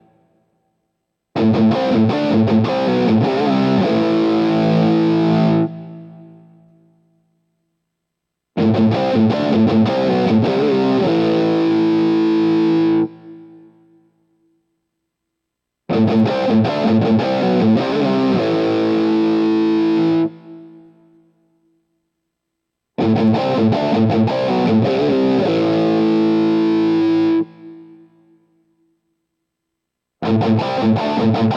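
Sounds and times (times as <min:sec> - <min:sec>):
electric guitar with mini humbucker pickup playing crunchy distorted tone: 0:01.4 - 0:06.7, 0:08.6 - 0:13.9, 0:15.9 - 0:21.0, 0:23.0 - 0:28.3, 0:30.2 - 0:31.5.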